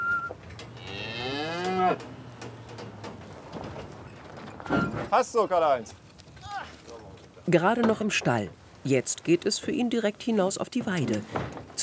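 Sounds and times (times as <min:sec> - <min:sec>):
breeding bull lowing inside a livestock trailer: 0:00.6 - 0:03.0
speech: 0:01.9 - 0:02.2, 0:05.1 - 0:06.0, 0:07.5 - 0:11.8.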